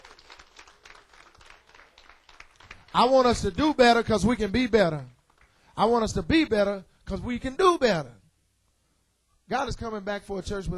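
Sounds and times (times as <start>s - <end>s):
hand clapping in praise during a church service: 0.0s - 4.1s, 5.0s - 5.6s
speech: 3.0s - 5.1s, 5.8s - 8.2s, 9.5s - 10.7s.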